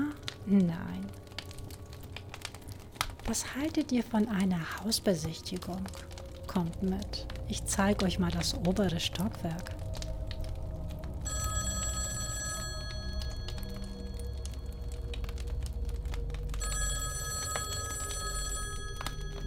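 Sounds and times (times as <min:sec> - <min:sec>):
steady low rumble of room noise: 0:00.0 - 0:19.4
speech: 0:00.5 - 0:01.0, 0:03.3 - 0:09.8
old-style telephone bell ringing: 0:11.3 - 0:14.4, 0:16.6 - 0:19.4.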